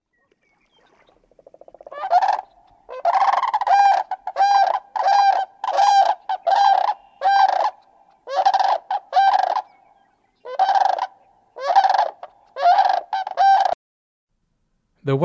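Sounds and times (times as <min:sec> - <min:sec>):
sandhill crane rolling bugle calls: 0:01.9 - 0:09.8, 0:10.4 - 0:13.8
speech: 0:15.1 - 0:15.2.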